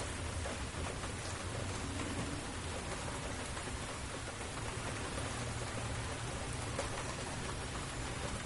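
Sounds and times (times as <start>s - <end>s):
steady rain falling: 0.0s - 8.4s.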